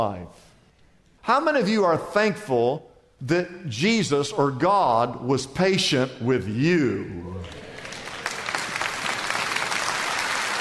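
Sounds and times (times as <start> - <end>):
speech: 0.0 - 0.5, 1.2 - 7.7
room full of people clapping: 7.4 - 10.5.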